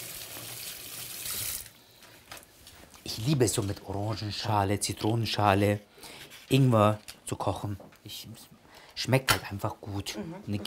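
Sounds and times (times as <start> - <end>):
hot tap water running at a sink: 0.0 - 1.8
speech: 3.2 - 10.6.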